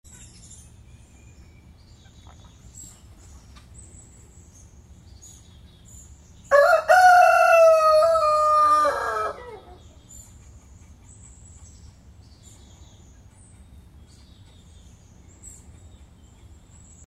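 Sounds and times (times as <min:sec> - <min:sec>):
rooster crowing: 0:06.5 - 0:09.9.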